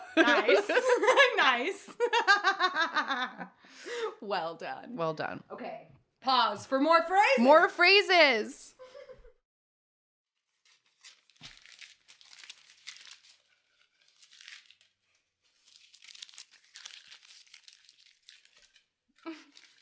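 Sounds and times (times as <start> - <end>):
laughter: 0.0 - 3.5
speech: 0.2 - 8.8
crisp paper crumpling and crinkling for ASMR: 10.4 - 19.8.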